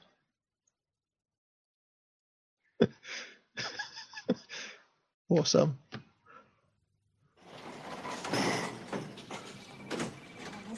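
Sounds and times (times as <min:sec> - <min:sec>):
laughter: 0:03.6 - 0:04.6
speech: 0:05.3 - 0:05.9
sliding door rattling open with long scraping clatter: 0:07.4 - 0:10.7.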